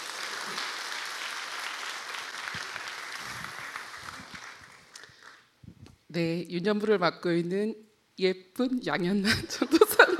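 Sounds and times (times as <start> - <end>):
audience applauding in a large room: 0.0 - 5.5
speech: 6.2 - 9.8
laughter: 9.2 - 10.1.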